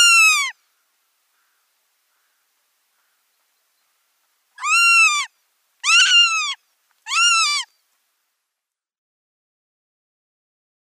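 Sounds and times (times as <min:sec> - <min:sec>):
northern goshawk nestling calling with wailing notes: 0:00.0 - 0:00.5, 0:04.6 - 0:07.7.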